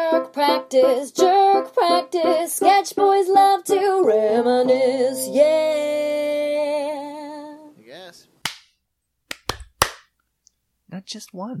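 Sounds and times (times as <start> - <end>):
speech: 0.3 - 7.0, 10.9 - 11.5
hand claps: 8.4 - 8.7, 9.3 - 10.2.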